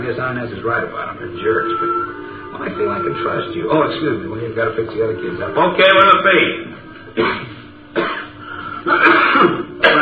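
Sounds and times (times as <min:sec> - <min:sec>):
speech: 0:00.0 - 0:08.1
person clearing throat: 0:07.1 - 0:10.0.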